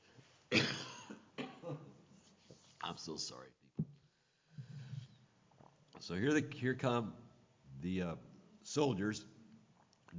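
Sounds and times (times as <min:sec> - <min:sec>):
person coughing: 0:00.5 - 0:02.0
speech: 0:02.9 - 0:03.6, 0:06.1 - 0:07.2, 0:07.8 - 0:09.3.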